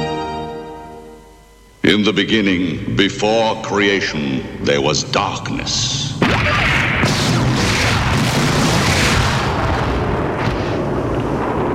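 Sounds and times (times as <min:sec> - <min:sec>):
speech: 0:01.9 - 0:06.8
explosion boom with deep rumbling and crackling: 0:06.2 - 0:11.7.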